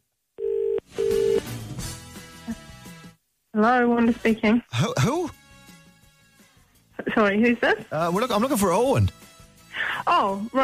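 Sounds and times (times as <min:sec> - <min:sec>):
telephone ringback tone on an outgoing call: 0:00.4 - 0:01.4
speech: 0:03.6 - 0:05.4, 0:07.2 - 0:09.3, 0:10.0 - 0:10.6.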